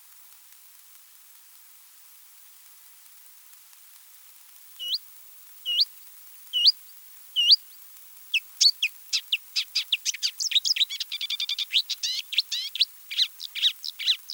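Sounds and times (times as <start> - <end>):
Marsh Warbler song in a marsh in France: 4.8 - 5.0, 5.6 - 5.9, 6.5 - 14.3.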